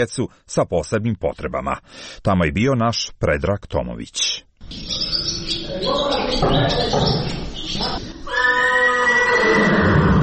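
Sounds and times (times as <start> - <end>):
speech: 0.0 - 8.1
horse neighing at a riding club on a spring morning: 8.2 - 10.2.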